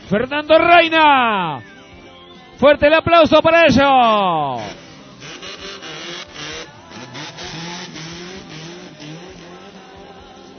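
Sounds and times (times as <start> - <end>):
speech: 0.1 - 1.7, 2.6 - 4.8
race car engine roaring past during a road race stage near Santa Teresita: 4.4 - 10.5.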